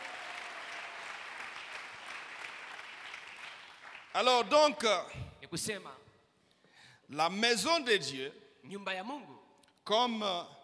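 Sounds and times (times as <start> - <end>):
church congregation clapping: 0.0 - 5.0
speech: 4.2 - 6.0, 7.1 - 10.6.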